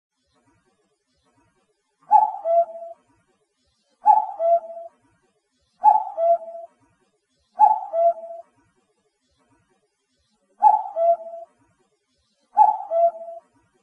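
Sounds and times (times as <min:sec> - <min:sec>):
common cuckoo falling two-note call: 0:02.1 - 0:03.0, 0:04.0 - 0:05.0, 0:05.8 - 0:06.7, 0:07.6 - 0:08.5, 0:10.6 - 0:11.6, 0:12.5 - 0:13.5.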